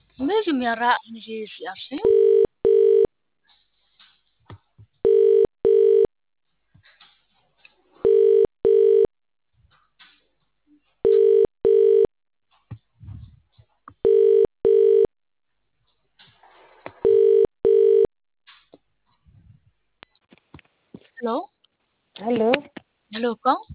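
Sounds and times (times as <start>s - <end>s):
speech: 0.2s - 2.4s, 21.2s - 21.5s, 22.2s - 23.7s
telephone ringing in a double-burst pattern: 2.0s - 3.1s, 5.0s - 6.1s, 8.0s - 9.1s, 11.0s - 12.1s, 14.0s - 15.1s, 17.0s - 18.1s.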